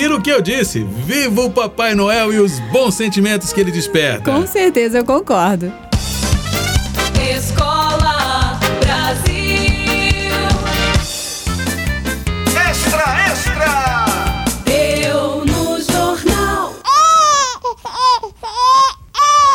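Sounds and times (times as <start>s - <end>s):
speech: 0.0s - 5.9s
upbeat music: 0.0s - 16.8s
baby crying loudly: 16.8s - 19.5s.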